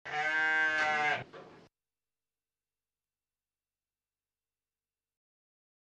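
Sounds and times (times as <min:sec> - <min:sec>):
sheep bleating: 0:00.0 - 0:01.3.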